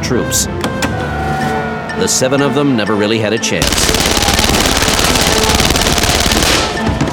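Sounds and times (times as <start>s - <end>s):
speech: 0.1s - 0.7s, 2.0s - 4.7s
loud rapid automatic gunfire: 3.6s - 6.8s
heavy crashing grenade explosions: 3.6s - 7.0s.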